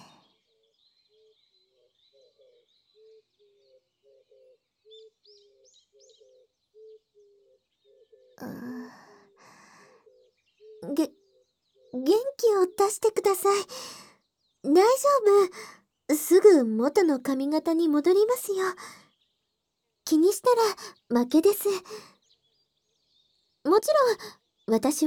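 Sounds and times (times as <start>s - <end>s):
birds singing with low repeated notes and high chirps: 0.0s - 25.0s
speech: 11.9s - 14.0s, 14.6s - 19.0s, 20.1s - 22.1s, 23.6s - 25.0s.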